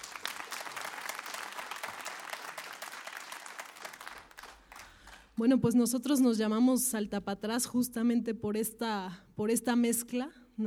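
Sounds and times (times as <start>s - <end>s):
audience applause for dancers: 0.0s - 5.3s
speech: 5.4s - 10.6s.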